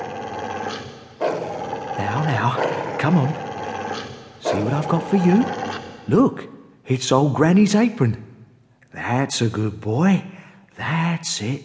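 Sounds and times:
dog growling: 0.0 - 6.1
speech: 2.0 - 3.4, 4.5 - 8.3, 8.9 - 11.6.

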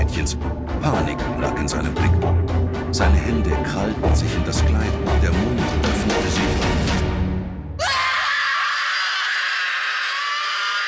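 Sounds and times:
speech: 0.2 - 2.2, 3.0 - 6.8
girl shrieking in a room: 7.8 - 10.8.

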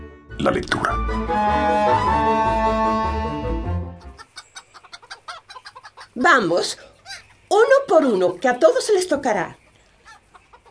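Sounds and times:
musical passage: 0.0 - 4.2
speech: 0.4 - 2.8, 6.2 - 6.9, 7.6 - 9.6
hens clucking while being fed in the backyard of a house: 4.0 - 10.6.

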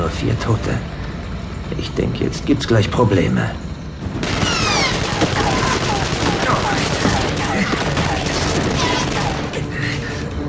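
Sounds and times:
speech: 0.1 - 1.0, 1.7 - 3.7
crossfire gunfire from several directions: 4.2 - 9.6.

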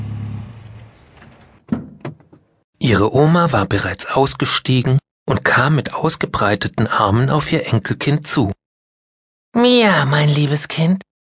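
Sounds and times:
car engine rumble driving slowly up a driveway: 0.0 - 1.6
sharp clunks: 0.7 - 2.6
speech: 2.8 - 8.6, 9.6 - 11.1.

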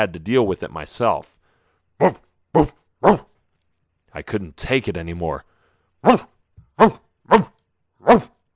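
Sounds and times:
speech: 0.0 - 1.4, 2.0 - 3.3, 4.2 - 8.3
dog barking: 2.0 - 3.4, 6.0 - 8.4.

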